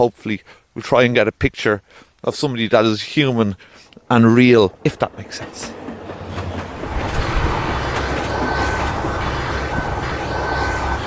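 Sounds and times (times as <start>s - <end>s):
speech: 0.0s - 6.0s
train rumbling past: 4.0s - 11.0s.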